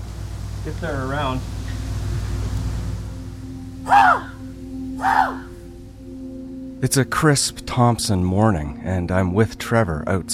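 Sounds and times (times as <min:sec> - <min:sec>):
steady low hum of noise: 0:00.0 - 0:10.3
speech: 0:00.6 - 0:01.6, 0:06.8 - 0:10.3
person imitating a raven's croaking call: 0:03.8 - 0:05.6.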